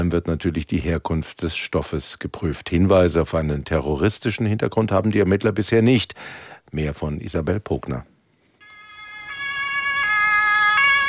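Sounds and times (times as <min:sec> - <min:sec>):
speech: 0:00.0 - 0:08.1
emergency vehicle two-tone siren wailing: 0:08.6 - 0:11.0.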